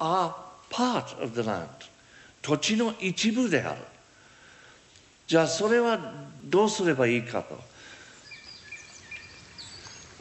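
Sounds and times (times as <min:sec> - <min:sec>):
speech: 0:00.0 - 0:04.0, 0:05.3 - 0:07.7
faint forest birds chirping: 0:07.7 - 0:10.2.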